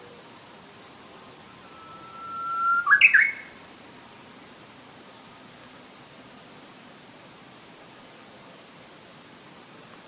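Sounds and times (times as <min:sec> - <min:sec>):
Japanese bush warbler song: 0:00.0 - 0:06.4.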